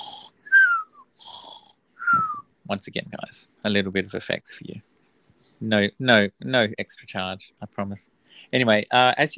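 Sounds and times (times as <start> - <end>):
voice imitating loud snoring: 0.0 - 0.4, 1.2 - 1.7
speech: 2.7 - 4.9, 5.6 - 9.3.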